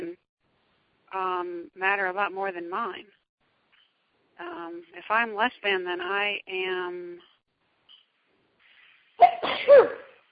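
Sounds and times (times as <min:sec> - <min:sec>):
speech: 0:01.2 - 0:03.2, 0:04.4 - 0:07.3, 0:09.2 - 0:10.1
person sneezing with a sharp intake: 0:09.2 - 0:10.3.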